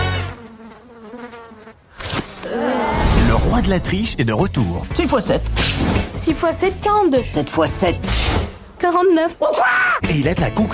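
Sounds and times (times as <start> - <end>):
fly buzzing in flight: 0.0 - 3.1
speech: 3.6 - 10.7.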